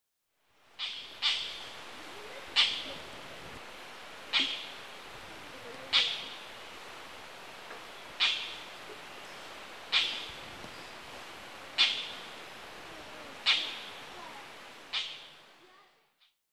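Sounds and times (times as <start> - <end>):
steady hiss: 0.4 - 16.2
Oriental dollarbird calls in Tottori: 0.8 - 1.8, 2.4 - 3.0, 4.2 - 5.0, 5.7 - 6.5, 8.1 - 8.8, 9.9 - 10.4, 11.7 - 12.3, 13.4 - 14.0.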